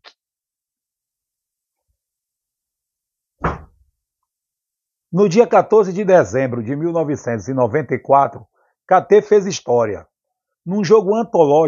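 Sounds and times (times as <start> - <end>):
door shutting thud: 3.4 - 3.8
speech: 5.1 - 11.6.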